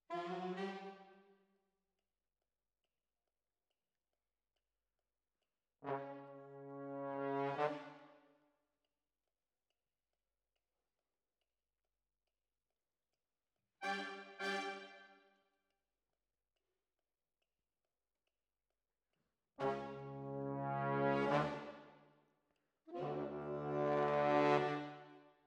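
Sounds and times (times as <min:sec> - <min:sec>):
trombones: 0:05.8 - 0:08.2, 0:13.8 - 0:15.1, 0:19.6 - 0:21.9, 0:22.9 - 0:25.2.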